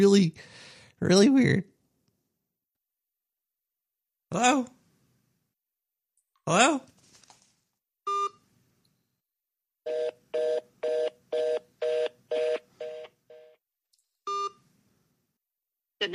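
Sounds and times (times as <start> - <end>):
speech: 0.0 - 1.7, 4.3 - 4.8, 6.5 - 6.9
electronic telephone tones on an outgoing call: 9.9 - 13.5, 14.3 - 14.6.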